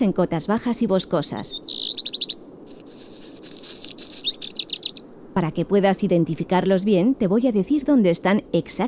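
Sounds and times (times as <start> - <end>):
speech: 0.0 - 2.2, 5.4 - 8.8
faint outdoor hiss: 0.0 - 8.8
alpine accentors, black redstart, common chaffinches and robin chirping among mountain summits: 0.9 - 6.8.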